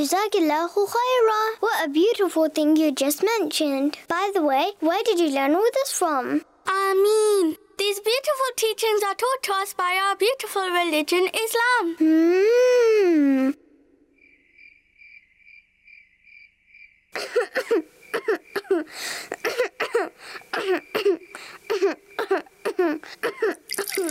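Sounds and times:
speech: 0:00.0 - 0:13.6, 0:17.2 - 0:24.1
person with a high fever coughing: 0:17.2 - 0:23.7.

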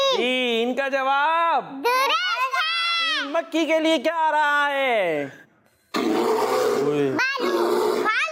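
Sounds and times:
speech: 0:00.2 - 0:02.1, 0:03.2 - 0:05.5
large bear growling roar: 0:05.9 - 0:08.1.

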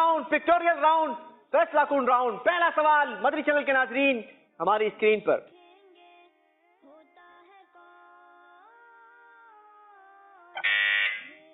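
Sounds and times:
speech: 0:00.2 - 0:05.6
quiz contestant's buzzer in a deciding round: 0:10.6 - 0:11.3.

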